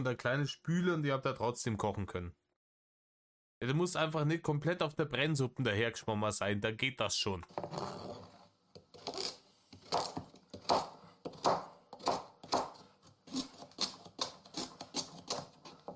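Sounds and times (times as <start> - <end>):
speech: 0.0 - 2.4, 3.6 - 8.3
knife chopping carrots: 7.5 - 15.9.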